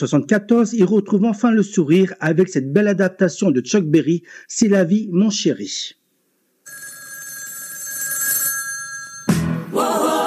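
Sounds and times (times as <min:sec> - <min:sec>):
speech: 0:00.0 - 0:06.0, 0:09.7 - 0:10.2
telephone ringing with a bright buzzing bell tone for a wake-up call: 0:06.6 - 0:10.2.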